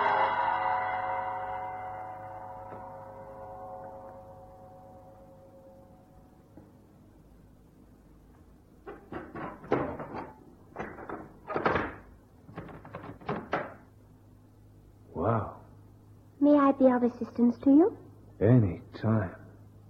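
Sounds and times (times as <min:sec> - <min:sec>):
deep temple gong ringing: 0:00.0 - 0:06.6
thuds and knocks: 0:08.8 - 0:13.8
speech: 0:16.8 - 0:19.4.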